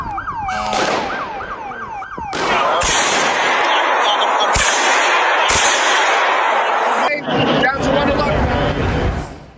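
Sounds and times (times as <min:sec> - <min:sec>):
wailing siren: 0:00.0 - 0:08.9
loud chaotic noise: 0:00.5 - 0:09.3
sharp gunshots fired into the air: 0:00.6 - 0:01.6, 0:02.2 - 0:07.0.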